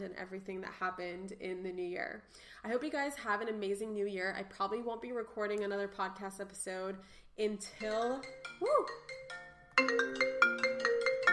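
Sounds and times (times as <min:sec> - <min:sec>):
speech: 0:00.0 - 0:09.2
mobile phone ringtone with bright electronic melody: 0:08.2 - 0:11.3.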